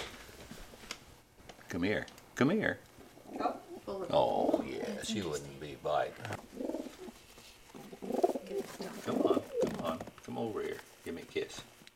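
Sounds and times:
speech: 0:01.7 - 0:06.6, 0:10.3 - 0:11.7
pigeon cooing: 0:03.2 - 0:05.1, 0:06.4 - 0:09.8.

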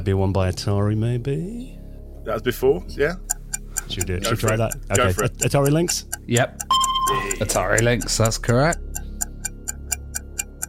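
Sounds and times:
speech: 0:00.0 - 0:08.8
quiz clock ticking: 0:02.5 - 0:10.6.

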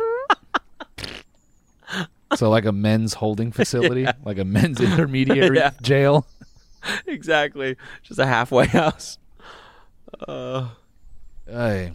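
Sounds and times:
laughter: 0:00.0 - 0:01.0, 0:03.6 - 0:09.2
voice imitating a fart with a breathy raspberry: 0:01.0 - 0:01.2
speech: 0:02.4 - 0:09.6, 0:10.2 - 0:10.8, 0:11.5 - 0:11.9.

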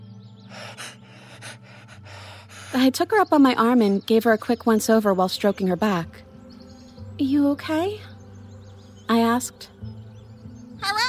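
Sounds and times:
pet bird making raspy breathless noises: 0:00.5 - 0:02.9
speech: 0:02.7 - 0:06.3, 0:07.2 - 0:08.1, 0:09.1 - 0:09.7.

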